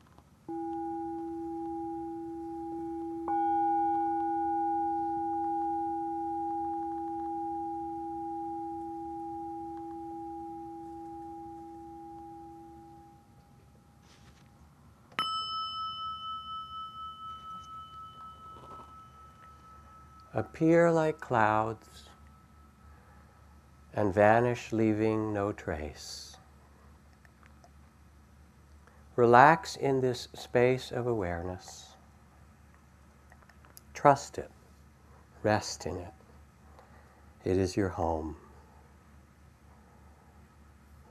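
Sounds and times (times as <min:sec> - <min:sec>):
bells ringing: 0:00.5 - 0:14.0, 0:15.2 - 0:23.6
speech: 0:20.4 - 0:22.1, 0:24.0 - 0:26.3, 0:29.2 - 0:31.9, 0:34.0 - 0:34.6, 0:35.4 - 0:36.2, 0:37.4 - 0:38.4.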